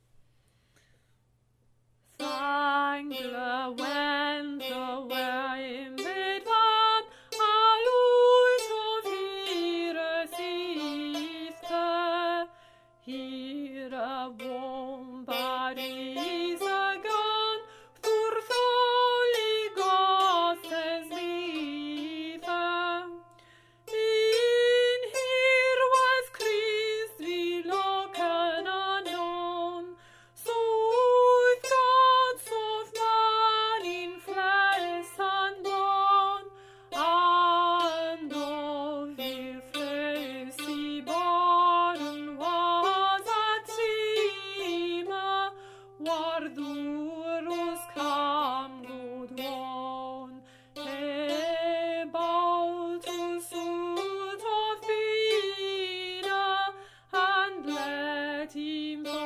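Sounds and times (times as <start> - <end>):
soprano singing: 2.2 - 23.3, 23.9 - 59.2.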